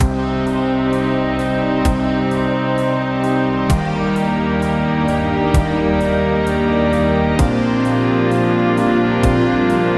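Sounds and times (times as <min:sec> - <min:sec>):
gentle soft romantic music: 0:00.0 - 0:09.9.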